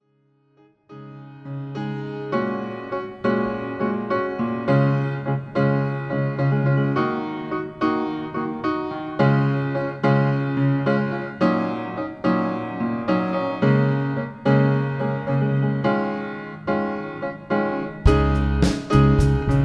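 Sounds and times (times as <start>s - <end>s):
piano: 0.0s - 19.6s
drums: 18.1s - 19.6s.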